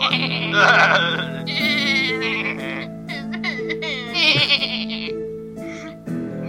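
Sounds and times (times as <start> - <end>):
several people imitating goat bleats: 0.1 - 2.9, 4.1 - 5.1.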